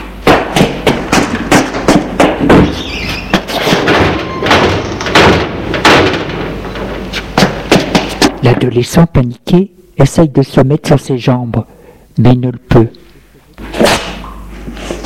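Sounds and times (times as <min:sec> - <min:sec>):
footsteps thudding: 0:00.0 - 0:08.7
heavy bangs: 0:00.2 - 0:08.4
metal roller shutters being hauled up: 0:02.6 - 0:07.2
speech: 0:08.6 - 0:13.0.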